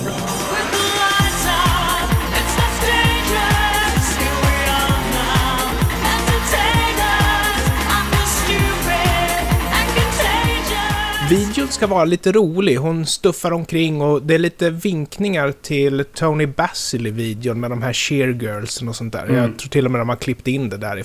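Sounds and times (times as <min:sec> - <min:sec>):
pop cover of a grunge song with punchy drum beat and thick bass: 0:00.0 - 0:11.9
speech: 0:11.3 - 0:21.0.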